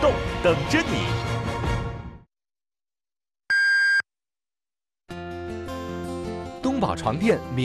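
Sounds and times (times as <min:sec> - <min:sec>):
music: 0:00.0 - 0:02.3, 0:05.1 - 0:07.6
speech: 0:00.4 - 0:01.2, 0:06.8 - 0:07.6
electronic radio time-signal beep marking 12 o'clock: 0:03.5 - 0:04.0.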